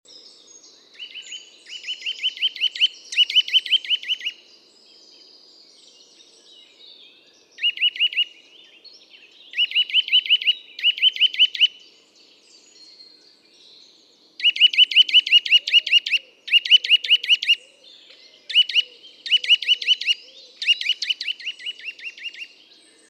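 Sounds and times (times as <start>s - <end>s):
Eurasian nuthatch Sitta europaea calling: 0.8s - 4.4s, 7.6s - 8.4s, 9.4s - 11.9s, 14.4s - 23.0s.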